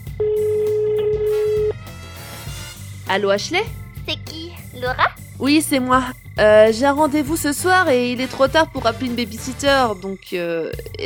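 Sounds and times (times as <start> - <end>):
telephone line tone while dialing a call: 0.1 - 1.7
speech: 3.1 - 3.8, 4.8 - 11.0.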